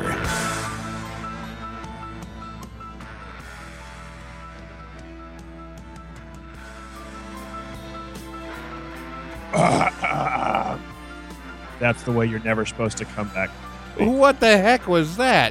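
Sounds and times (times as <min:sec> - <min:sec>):
throat clearing: 0:09.5 - 0:10.8
speech: 0:11.8 - 0:15.4.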